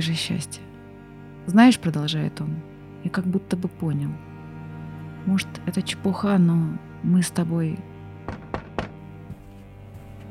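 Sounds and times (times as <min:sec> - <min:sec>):
speech: 0:00.0 - 0:00.7, 0:01.5 - 0:04.3, 0:05.2 - 0:07.9
heavy forceful knocking on a door: 0:08.3 - 0:09.1.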